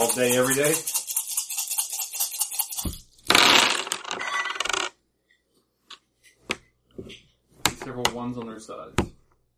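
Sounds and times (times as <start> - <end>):
speech: 0.0 - 1.0, 8.2 - 9.2
tabletop game effect dice rattling across a hard tabletop: 0.0 - 5.0.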